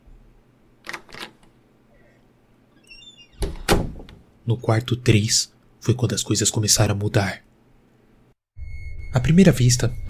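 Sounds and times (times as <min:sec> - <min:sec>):
faint door squeak: 0:02.8 - 0:03.4
sharp door latch clicks: 0:02.9 - 0:04.2
speech: 0:04.5 - 0:07.5, 0:09.2 - 0:10.0.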